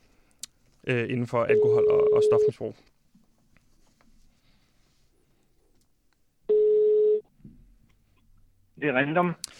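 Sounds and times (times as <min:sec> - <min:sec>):
speech: 0:00.8 - 0:02.9, 0:08.8 - 0:09.5
ringback tone of an outgoing phone call from a radio studio: 0:01.5 - 0:02.6, 0:06.5 - 0:07.2
faint rustle: 0:02.8 - 0:05.8.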